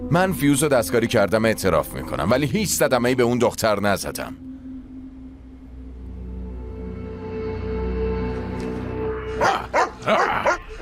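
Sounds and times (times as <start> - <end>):
speech: 0.1 - 4.4
low droning hum: 4.3 - 9.2
dog barking: 9.4 - 10.7.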